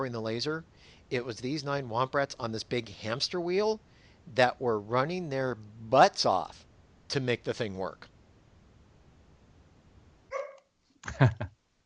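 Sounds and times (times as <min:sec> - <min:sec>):
speech: 0:00.0 - 0:08.1, 0:11.0 - 0:11.6
dog barking: 0:10.3 - 0:10.6.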